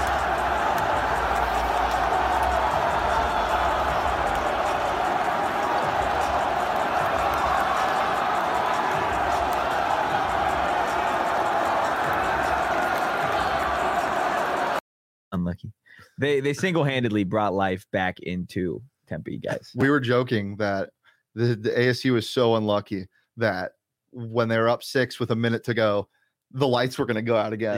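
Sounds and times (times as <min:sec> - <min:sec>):
packed arena crowd roaring and cheering as fans rush a basketball court: 0:00.0 - 0:14.8
speech: 0:15.6 - 0:27.7.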